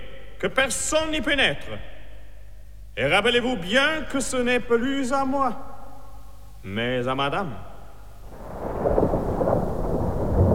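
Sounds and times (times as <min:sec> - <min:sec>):
speech: 0:00.4 - 0:01.9, 0:03.0 - 0:05.7, 0:06.6 - 0:07.7
thunder of an approaching storm rumbling: 0:08.2 - 0:10.5.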